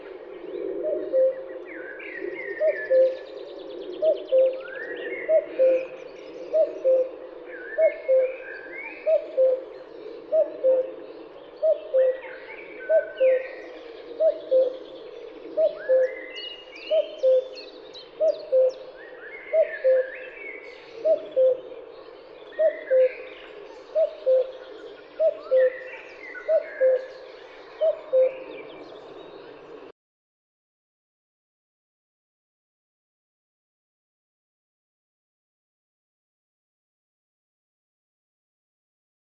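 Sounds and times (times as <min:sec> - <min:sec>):
Cuculus canorus cuckoo calling: 0:00.8 - 0:02.0, 0:02.6 - 0:03.4, 0:04.0 - 0:09.7, 0:10.3 - 0:11.0, 0:12.8 - 0:21.8, 0:22.4 - 0:28.8.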